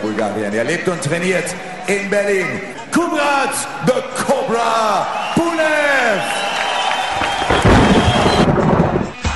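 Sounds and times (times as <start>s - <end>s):
speech: 0.1s - 6.4s
loud rolling rumble of thunder: 7.2s - 9.2s
sharp booms: 7.4s - 9.2s.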